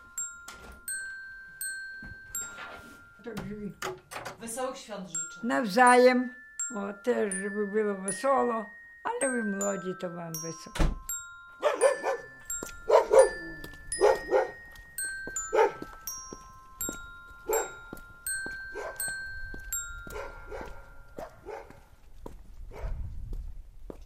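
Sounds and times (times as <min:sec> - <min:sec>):
speech: 0:03.2 - 0:10.9
small dog barking: 0:11.6 - 0:12.3, 0:12.9 - 0:14.6, 0:20.1 - 0:21.8
faint footsteps: 0:11.9 - 0:24.0.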